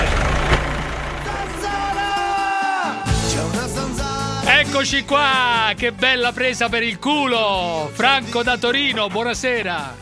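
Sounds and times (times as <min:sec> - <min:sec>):
car engine starting and idling: 0:00.0 - 0:06.7
speech: 0:04.6 - 0:10.0.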